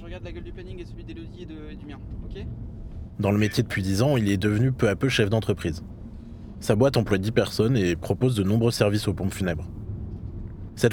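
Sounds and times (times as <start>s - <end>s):
constant road noise: 0.0s - 10.9s
low engine rumble of a moving car heard from the cabin: 0.0s - 10.9s
speech: 0.1s - 6.0s, 6.6s - 9.8s, 10.8s - 10.9s.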